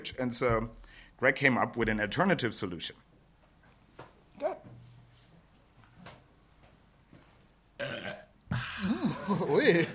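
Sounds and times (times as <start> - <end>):
speech: 0.0 - 3.1, 9.3 - 9.9
loud burps: 7.8 - 9.2
laughter: 8.6 - 9.9.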